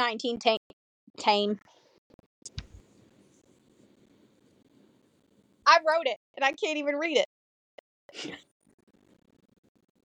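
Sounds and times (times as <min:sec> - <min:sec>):
speech: 0:00.0 - 0:02.6, 0:05.7 - 0:07.4, 0:08.1 - 0:08.5
single loud sneeze: 0:08.2 - 0:08.4.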